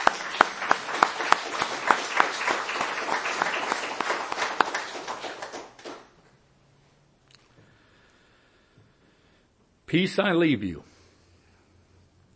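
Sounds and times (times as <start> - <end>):
crowd applauding: 0.0 - 6.2
sharp claps: 0.0 - 6.2
speech: 9.9 - 10.9.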